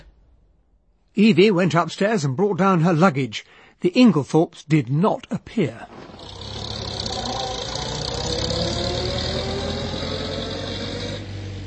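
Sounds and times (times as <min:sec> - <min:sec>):
speech: 0:01.2 - 0:06.6
car engine running as the car drives off down a drive: 0:05.9 - 0:11.6.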